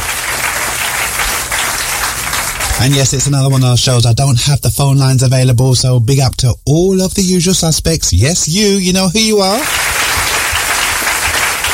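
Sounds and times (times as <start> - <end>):
round of applause from many clapping hands: 0.0 - 3.9, 9.5 - 11.7
speech: 2.8 - 9.9.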